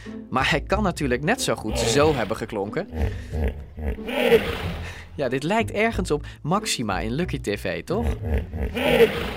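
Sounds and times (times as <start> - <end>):
speech: 0.0 - 9.3
hippopotamus grunting and bellowing: 1.7 - 5.0, 7.9 - 9.3.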